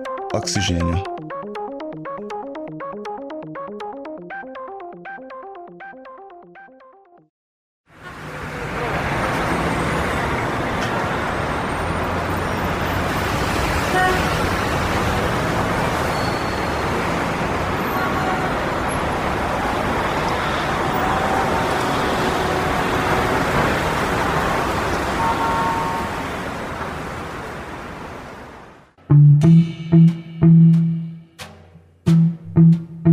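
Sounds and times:
speech: 0:00.4 - 0:01.3
city street traffic with cars passing: 0:07.9 - 0:33.0.

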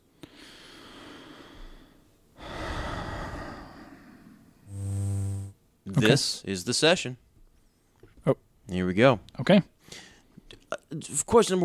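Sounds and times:
deep breath drawn before an auditing session: 0:00.2 - 0:05.0
sustained buzzing tone: 0:04.7 - 0:05.6
speech: 0:05.9 - 0:07.2, 0:08.2 - 0:10.1, 0:10.9 - 0:11.6.

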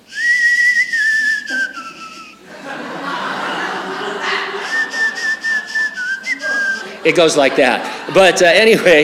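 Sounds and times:
whistled Spanish speech: 0:00.1 - 0:02.4, 0:04.7 - 0:07.0
person chuckling: 0:01.2 - 0:02.4, 0:04.0 - 0:08.2
speech: 0:07.0 - 0:09.0.

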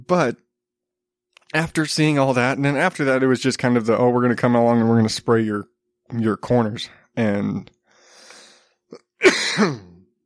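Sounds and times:
speech: 0:00.1 - 0:00.4, 0:01.5 - 0:07.8, 0:08.9 - 0:09.9
person clearing throat: 0:08.9 - 0:10.1
person coughing: 0:09.0 - 0:10.1.

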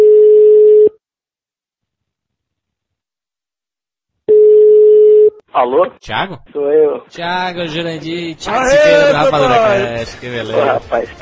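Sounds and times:
telephone ringback tone while placing a call: 0:04.3 - 0:05.3
speech: 0:05.6 - 0:11.2.

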